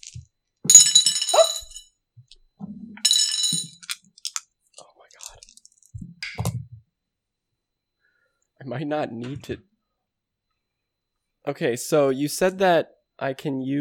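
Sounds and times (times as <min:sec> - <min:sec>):
dice rattling and clattering across a hard surface: 0:00.0 - 0:01.8, 0:03.1 - 0:04.4, 0:05.1 - 0:06.0
speech: 0:08.7 - 0:09.7, 0:11.5 - 0:13.7.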